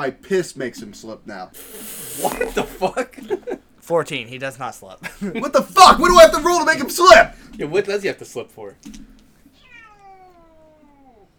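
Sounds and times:
speech: 0:00.0 - 0:09.0
laughter: 0:02.2 - 0:03.7, 0:05.0 - 0:07.2
long drawn-out cat meow sliding downward in pitch: 0:09.5 - 0:11.3.

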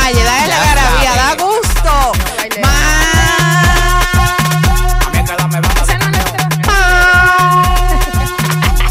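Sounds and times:
electronic dance beat with heavy bass kicks and repeating synth notes: 0:00.0 - 0:08.8
truck air horn blasts: 0:02.7 - 0:05.1, 0:06.7 - 0:08.8.

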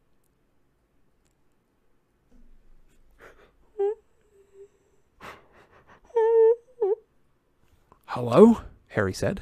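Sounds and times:
person sobbing with breathy whimpers and wavering wails: 0:03.1 - 0:07.1
speech: 0:08.2 - 0:09.4.

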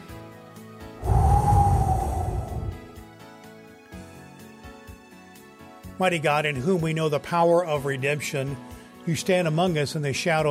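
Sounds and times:
deep breath inhale before a prayer: 0:01.0 - 0:03.0
speech: 0:06.0 - 0:10.4.

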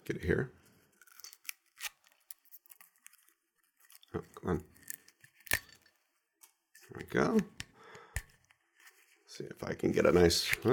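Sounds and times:
speech: 0:00.1 - 0:00.6, 0:04.4 - 0:04.7, 0:07.2 - 0:07.6, 0:09.4 - 0:10.7
copper foil being pulled off a bottle of Scottish blended spirit by its zip strip: 0:00.9 - 0:05.7.

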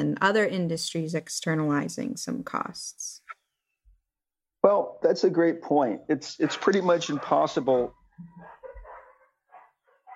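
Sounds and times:
speech: 0:00.0 - 0:03.2, 0:04.6 - 0:08.6
several dogs barking: 0:06.3 - 0:10.1.

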